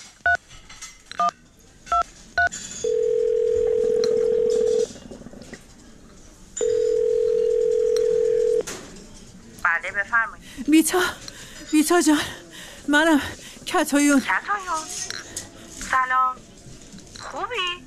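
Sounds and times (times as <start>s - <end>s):
faint murmur: 0.6s - 17.8s
telephone keypad tones from dialing a number: 2.9s - 4.9s, 6.6s - 8.6s
speech: 10.8s - 15.0s.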